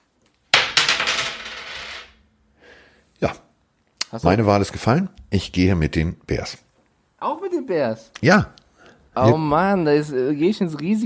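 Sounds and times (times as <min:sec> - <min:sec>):
coin tossed and landing on a hard surface: 0:00.5 - 0:02.3
speech: 0:03.2 - 0:03.4, 0:04.1 - 0:06.6, 0:07.2 - 0:08.6, 0:09.2 - 0:11.0.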